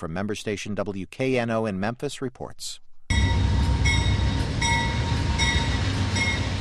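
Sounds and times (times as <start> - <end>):
speech: 0.0 - 2.8
passenger train carrying evacuees arriving at a station: 3.1 - 6.6.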